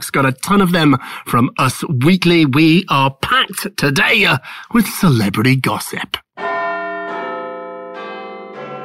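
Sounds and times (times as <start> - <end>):
speech: 0.1 - 6.2
Big Ben-style clock tower bell chimes: 6.4 - 8.8.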